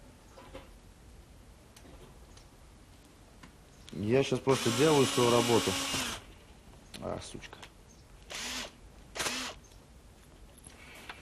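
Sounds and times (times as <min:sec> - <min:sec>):
speech: 0:04.0 - 0:06.0, 0:07.2 - 0:07.7
power drill whirring: 0:04.4 - 0:06.2, 0:08.3 - 0:09.6.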